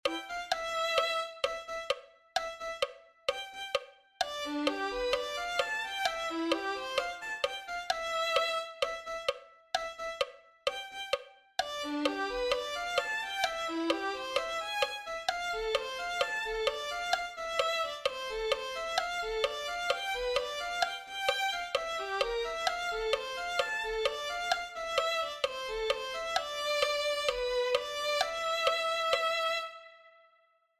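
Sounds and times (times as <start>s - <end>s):
violin: 0.0s - 30.4s.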